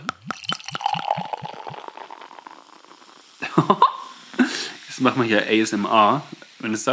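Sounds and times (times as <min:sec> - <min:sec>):
pale ale glugging from a bottle into a glass: 0:00.0 - 0:06.7
speech: 0:03.6 - 0:03.9, 0:05.0 - 0:06.9.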